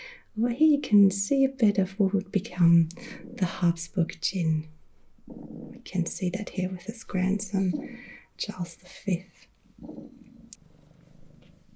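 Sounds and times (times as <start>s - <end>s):
speech: 0.4s - 10.2s
cat purring: 2.4s - 11.7s.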